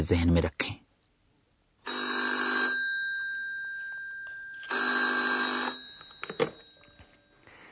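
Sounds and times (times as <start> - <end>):
speech: 0.0 - 0.6
telephone ringing with a classic bell-like trill: 1.8 - 7.5.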